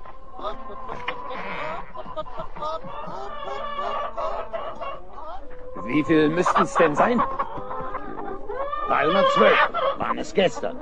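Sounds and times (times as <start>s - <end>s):
flock of hens clucking and squawking as the coop is opened: 0.0s - 10.8s
laughter: 0.4s - 7.3s
speech: 5.9s - 7.4s, 8.9s - 10.8s.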